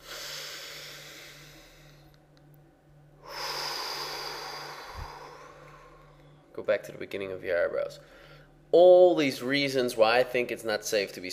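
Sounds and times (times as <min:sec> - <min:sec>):
deep breath: 0:00.0 - 0:02.2, 0:03.2 - 0:06.4, 0:08.0 - 0:08.7
speech: 0:06.6 - 0:11.3.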